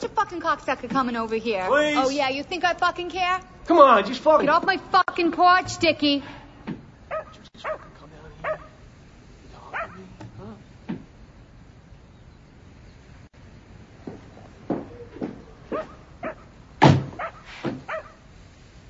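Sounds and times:
speech: 0.0 - 6.4
Cocker Spaniel barking and yipping: 7.1 - 8.8, 9.7 - 10.0, 14.9 - 18.3.

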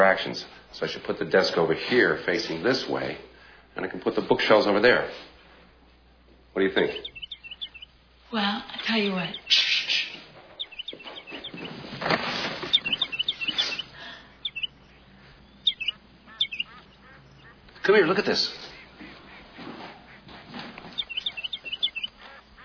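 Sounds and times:
speech: 0.0 - 5.3, 6.6 - 7.2, 8.3 - 9.7, 17.8 - 18.6
rustling: 5.1 - 22.6
sparrow chirping outside window: 6.6 - 22.6.

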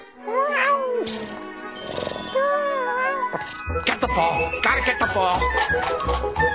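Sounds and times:
cat meowing: 0.3 - 1.1, 2.4 - 3.4
speech: 4.2 - 6.5.

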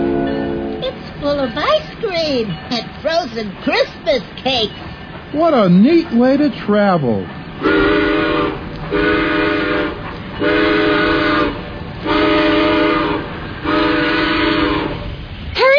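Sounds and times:
train whistle blasts as the train pulls out: 0.0 - 0.9, 7.6 - 15.1
train rumbling as it pulls out: 0.0 - 15.7
speech: 1.3 - 8.0.

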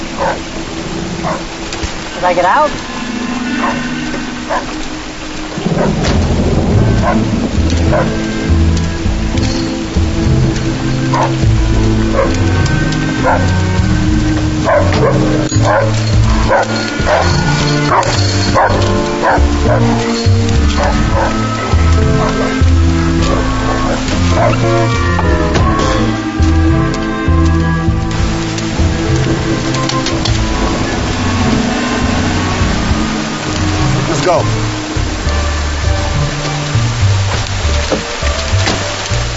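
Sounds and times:
continuous patter: 0.0 - 39.3
dog running around barking excitedly: 0.2 - 0.4, 1.2 - 1.5, 3.6 - 3.8, 7.0 - 7.2, 7.8 - 8.2, 11.1 - 11.4, 12.1 - 12.4, 13.2 - 13.5, 14.6 - 22.6, 23.2 - 24.9
speech: 2.2 - 2.9, 7.1 - 8.3, 12.1 - 13.8, 14.7 - 22.7, 23.3 - 26.2, 29.4 - 30.3, 34.2 - 34.8.

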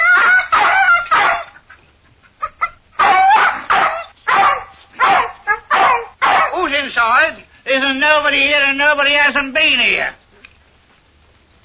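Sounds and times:
dog barking: 0.0 - 1.6, 3.0 - 6.6
dog yelping: 0.0 - 1.7, 2.4 - 6.6
speech: 7.8 - 10.2.

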